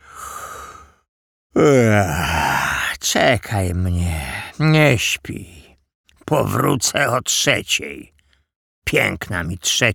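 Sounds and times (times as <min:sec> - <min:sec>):
speech: 0:01.6 - 0:02.2, 0:03.1 - 0:05.6, 0:06.3 - 0:08.2, 0:08.9 - 0:09.9
man yawning loudly with a groaning exhale: 0:01.6 - 0:02.9.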